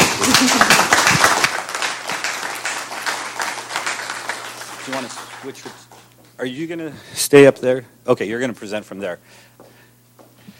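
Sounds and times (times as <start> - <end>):
room full of people applauding: 0.0 - 6.1
speech: 5.4 - 9.6.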